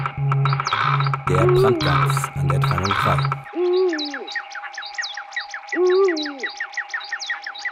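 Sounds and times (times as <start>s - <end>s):
steady droning tone: 0.0s - 3.6s
busy rhythmic chorus of higher chirps: 0.0s - 7.7s
Eurasian eagle-owl hooting: 0.4s - 7.7s
speech: 1.3s - 3.5s.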